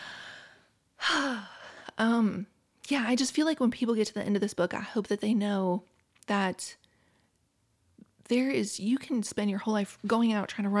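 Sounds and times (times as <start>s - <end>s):
deep breath: 0.0s - 1.9s
speech: 2.0s - 6.8s, 8.3s - 10.7s.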